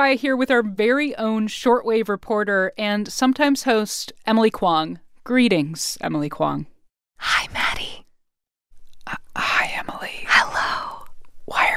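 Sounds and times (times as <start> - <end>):
speech: 0.0 - 7.6
breathy ASMR whispering from one or two voices: 7.2 - 8.0, 9.1 - 11.7.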